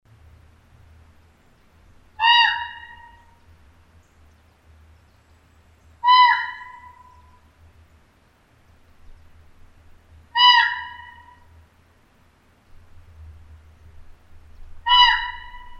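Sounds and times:
common raven: 2.2s - 3.4s, 6.0s - 7.5s, 10.3s - 11.5s, 14.8s - 15.7s.

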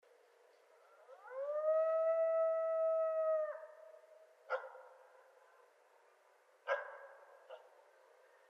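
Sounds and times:
coyote howling at night: 1.0s - 3.9s.

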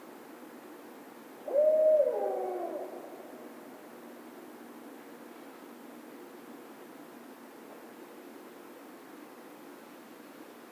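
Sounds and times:
Barred owl hooting with quavering tail: 1.4s - 3.7s.

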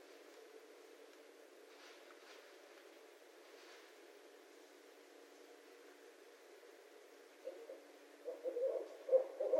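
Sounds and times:
barred owl hooting: 7.4s - 9.5s.

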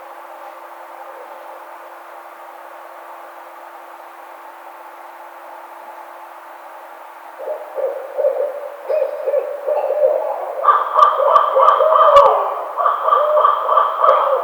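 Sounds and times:
barred owl hooting and whooping: 7.4s - 14.4s.

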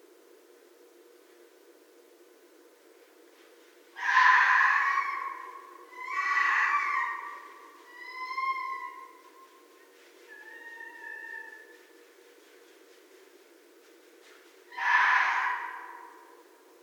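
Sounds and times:
quiet background hum: 0.0s - 16.8s
red fox calling: 4.0s - 9.5s, 10.2s - 11.8s, 14.7s - 16.4s.

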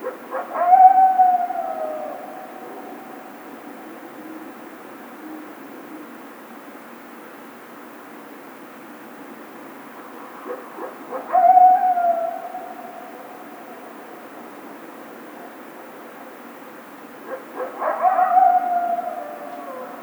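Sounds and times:
coyote howling: 0.0s - 4.0s, 10.8s - 14.8s, 17.3s - 20.0s
steady background hiss: 0.0s - 20.0s.

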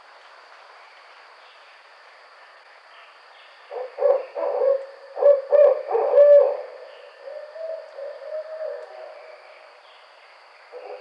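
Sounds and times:
barred owl hooting: 3.7s - 9.5s, 10.7s - 10.9s.

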